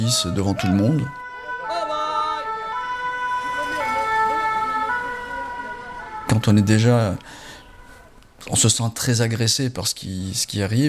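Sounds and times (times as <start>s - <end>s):
speech: 0.0s - 1.2s, 6.4s - 7.4s, 8.4s - 10.8s
ambulance siren wailing: 0.0s - 8.2s
continuous hum of street traffic: 0.0s - 8.9s.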